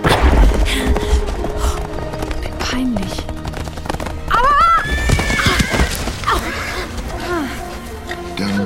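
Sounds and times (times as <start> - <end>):
dense rumble of hoofbeats: 0.2 - 8.6
horse whinnying while jumping a wide ditch and falling: 4.3 - 6.7.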